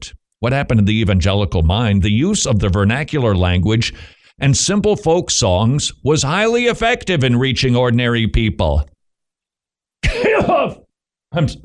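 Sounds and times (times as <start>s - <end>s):
speech: 0.4s - 8.9s, 10.4s - 11.6s
loud throat clearing with gravelly rasp: 10.0s - 10.8s.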